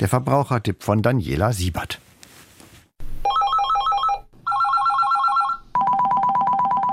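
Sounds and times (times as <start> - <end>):
speech: 0.0 - 2.1
phone electronic ringtone warbling: 3.3 - 6.9.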